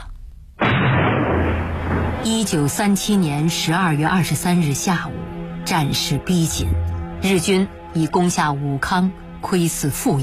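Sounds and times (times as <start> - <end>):
distant continuous artillery fire rumbling: 0.6 - 2.8
speech: 2.2 - 10.2.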